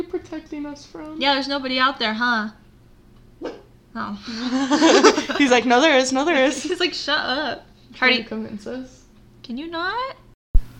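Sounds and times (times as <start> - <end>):
speech: 0.3 - 2.6, 3.4 - 10.2
dog barking: 3.4 - 3.7
laughter: 4.3 - 5.7.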